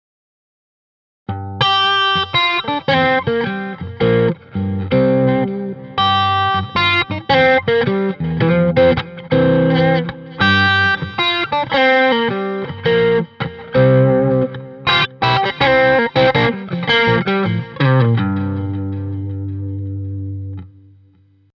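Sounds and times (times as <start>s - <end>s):
Stratocaster electric guitar: 1.3s - 21.2s.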